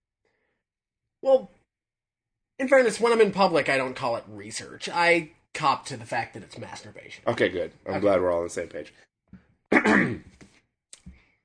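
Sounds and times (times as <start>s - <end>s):
speech: 1.2s - 1.6s, 2.6s - 9.1s, 9.7s - 10.4s
raspy throat clearing: 9.7s - 10.3s.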